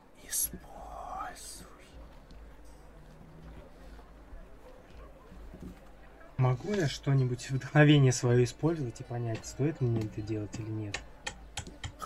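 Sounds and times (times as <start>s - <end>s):
eerie breathy whispering voices: 0.0s - 4.6s
speech: 6.6s - 11.1s.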